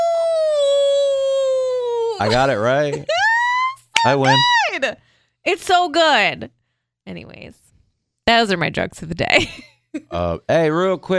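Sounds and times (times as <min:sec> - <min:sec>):
person imitating a wolf howl: 0:00.0 - 0:02.2, 0:03.4 - 0:04.8
speech: 0:02.2 - 0:03.2, 0:04.0 - 0:07.6, 0:08.3 - 0:11.1.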